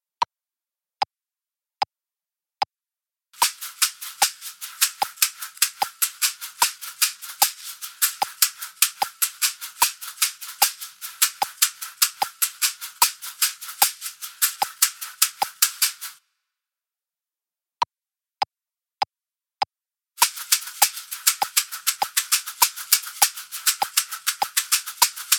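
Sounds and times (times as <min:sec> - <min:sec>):
two identical caxixi shakers shaking: 0:03.4 - 0:16.2, 0:20.2 - 0:25.3.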